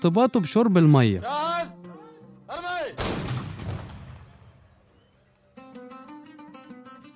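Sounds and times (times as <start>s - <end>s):
speech: 0.0s - 1.5s
cannon blast: 3.0s - 4.7s.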